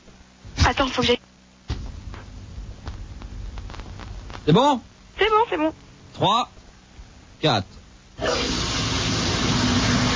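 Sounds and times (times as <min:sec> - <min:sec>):
speech: 0:00.7 - 0:01.3, 0:04.5 - 0:06.6, 0:07.4 - 0:08.6
shower running water: 0:08.2 - 0:10.1.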